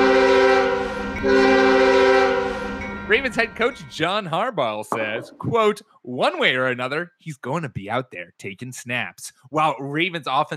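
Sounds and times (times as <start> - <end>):
train horn blaring a multi-tone chord: 0.0 - 2.9
low rail rumble: 0.0 - 3.9
speech: 3.1 - 10.5.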